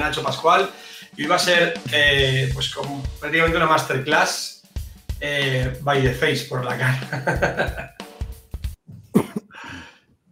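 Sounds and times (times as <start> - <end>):
speech: 0.0 - 4.6, 5.2 - 8.0
laughter: 6.8 - 7.9
person coughing: 9.0 - 9.9
breathy throat-clearing exhale: 9.5 - 10.0.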